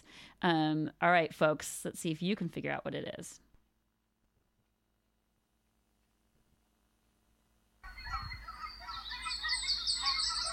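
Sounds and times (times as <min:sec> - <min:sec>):
speech: 0:00.4 - 0:03.4
geese honking: 0:07.9 - 0:10.5.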